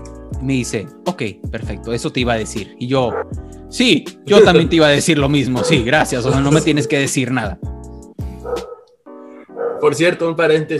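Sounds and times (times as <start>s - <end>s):
speech: 0.4s - 7.7s, 9.8s - 10.7s
dog barking outside: 3.1s - 3.4s, 5.6s - 6.7s, 8.4s - 9.9s
dog yelp: 5.6s - 6.6s, 8.4s - 8.9s, 9.5s - 9.9s.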